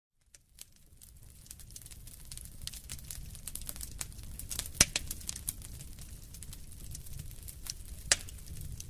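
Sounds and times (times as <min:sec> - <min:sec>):
fire crackling in a fireplace: 0:00.2 - 0:08.8.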